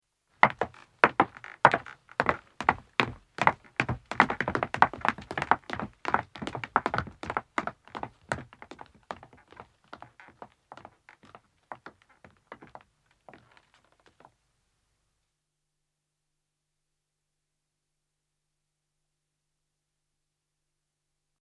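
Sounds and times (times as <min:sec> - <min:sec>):
footsteps of a man and a woman descending on wood: 0:00.4 - 0:14.2.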